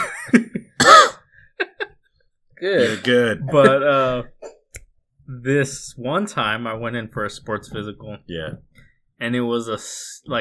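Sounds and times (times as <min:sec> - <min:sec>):
person coughing: 0:00.8 - 0:01.2, 0:02.8 - 0:03.8
speech: 0:02.6 - 0:04.3, 0:05.3 - 0:10.3.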